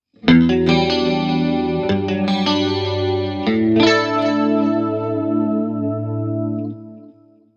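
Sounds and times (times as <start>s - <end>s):
guitar: 0.0s - 7.5s.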